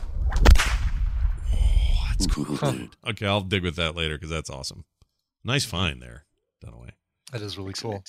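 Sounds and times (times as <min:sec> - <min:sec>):
whip crack sound effect: 0:00.0 - 0:01.0
speech: 0:02.2 - 0:08.0.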